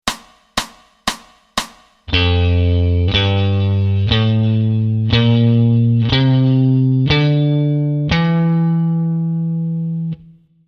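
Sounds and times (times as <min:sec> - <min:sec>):
C Mixolydian notes on the 6th string: 0:02.1 - 0:10.6.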